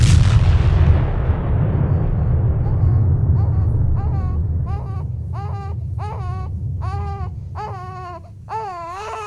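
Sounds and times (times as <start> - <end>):
sci-fi sunbolt energy cannon firing: 0.0 - 5.2
infant wailing: 1.9 - 9.2.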